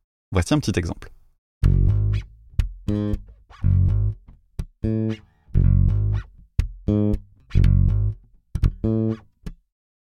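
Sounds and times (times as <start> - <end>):
speech: 0.3 - 1.2, 2.9 - 3.7
virtual instrument playing a steady groove of short punchy notes: 1.6 - 9.1.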